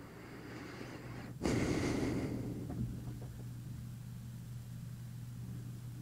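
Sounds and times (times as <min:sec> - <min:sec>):
breath rushing into the microphone: 0:00.0 - 0:02.9
steady low electrical hum: 0:00.0 - 0:05.9.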